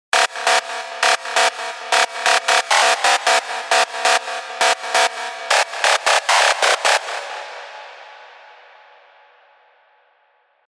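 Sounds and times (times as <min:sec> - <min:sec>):
synth lead: 0:00.1 - 0:08.0.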